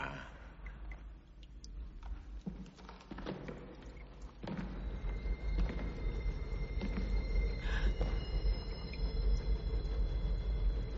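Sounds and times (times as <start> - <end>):
train rumbling through a tunnel on long-abandoned lines: 4.8 - 10.9.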